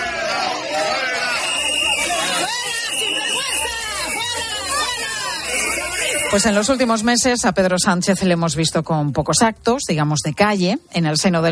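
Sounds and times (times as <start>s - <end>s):
large crowd in Seville booing the head of government: 0.0s - 7.0s
speech: 6.3s - 11.5s.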